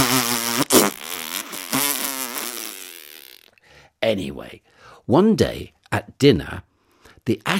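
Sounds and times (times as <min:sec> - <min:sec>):
buzzy wavering fart noises: 0:00.0 - 0:03.5
speech: 0:04.0 - 0:07.5.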